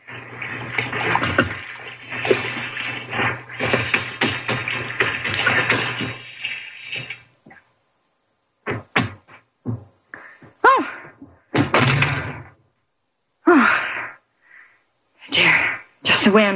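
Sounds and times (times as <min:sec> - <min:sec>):
hot tap water running into a sink: 0:00.0 - 0:07.3
low hum: 0:00.0 - 0:15.8.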